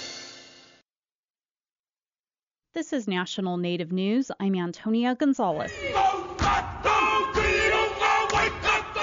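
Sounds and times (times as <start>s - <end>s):
speech: 2.7s - 6.1s
group shouting a Maori haka war chant in unison: 5.6s - 9.0s.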